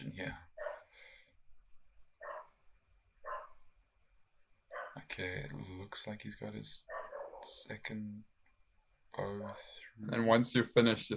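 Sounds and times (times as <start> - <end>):
low steady background hum: 0.0 - 11.1
faint dog barks: 0.6 - 0.9, 2.2 - 2.6, 3.2 - 3.6, 4.7 - 5.1, 6.8 - 7.6
speech: 5.0 - 8.3, 9.1 - 11.1.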